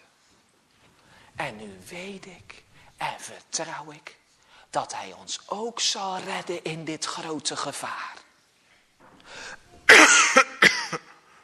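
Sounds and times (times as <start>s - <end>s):
speech: 1.4s - 8.3s
woman coughing: 9.9s - 11.1s.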